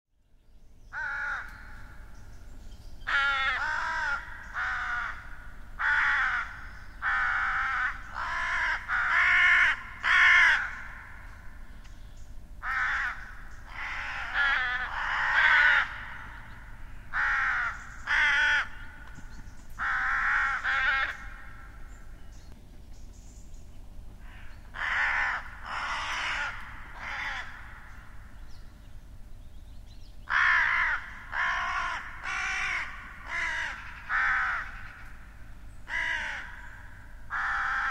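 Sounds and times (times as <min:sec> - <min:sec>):
crow giving drawn-out hoarse rasping caws: 0:00.9 - 0:02.1, 0:03.1 - 0:11.5, 0:12.6 - 0:19.2, 0:19.8 - 0:21.9, 0:24.2 - 0:28.3, 0:30.3 - 0:37.8.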